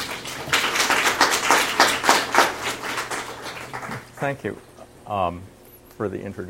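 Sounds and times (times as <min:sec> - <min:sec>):
audience applause: 0:00.0 - 0:04.4
speech: 0:04.2 - 0:06.4.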